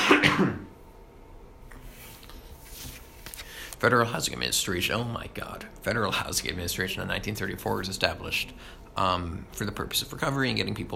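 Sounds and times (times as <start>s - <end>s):
person coughing: 0.0s - 0.7s
faint shuffling: 1.8s - 3.9s
speech: 3.8s - 10.9s.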